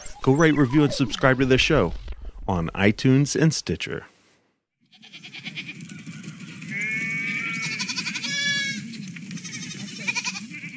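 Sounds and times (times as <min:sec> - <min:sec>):
steady low rumbling background: 0:00.0 - 0:03.2
speech: 0:00.2 - 0:04.1
sheep bleating: 0:04.9 - 0:05.8, 0:06.7 - 0:10.7.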